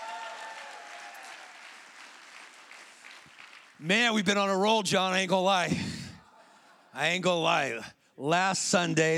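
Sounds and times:
sustained audience applause: 0.0 - 3.8
speech: 3.8 - 5.9, 7.0 - 9.1.

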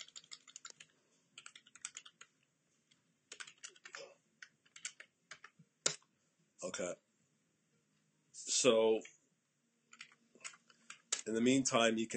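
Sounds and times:
typing on a computer keyboard: 0.0 - 2.3, 2.9 - 6.0, 9.9 - 11.3
speech: 6.6 - 7.0, 8.6 - 9.2, 11.3 - 12.1.

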